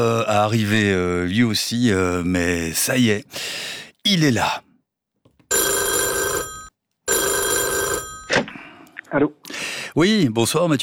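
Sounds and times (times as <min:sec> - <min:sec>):
speech: 0:00.0 - 0:04.6, 0:09.1 - 0:10.8
mobile phone ringing in England: 0:05.5 - 0:08.7.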